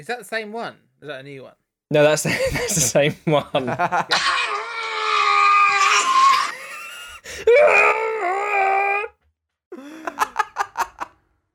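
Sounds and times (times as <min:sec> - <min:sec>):
speech: 0:00.0 - 0:04.4
man screaming loudly in strained wails: 0:04.1 - 0:06.6, 0:07.5 - 0:09.1.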